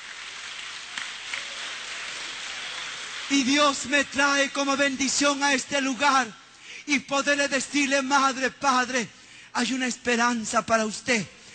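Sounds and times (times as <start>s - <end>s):
crowd at a religious service applauding: 0.0s - 5.2s
speech: 3.3s - 11.4s.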